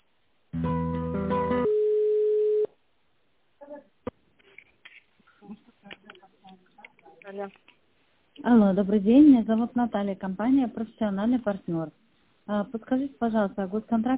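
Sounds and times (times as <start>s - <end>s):
telephone line tone while a call is transferred: 1.6s - 2.7s
speech: 7.4s - 7.6s, 8.4s - 14.1s.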